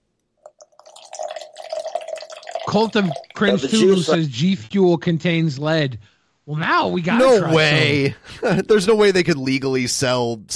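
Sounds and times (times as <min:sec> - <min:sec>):
fresh water poured into a shaker cup: 0:00.4 - 0:04.0
laughter: 0:02.7 - 0:04.3, 0:07.0 - 0:09.8
speech: 0:02.7 - 0:10.5.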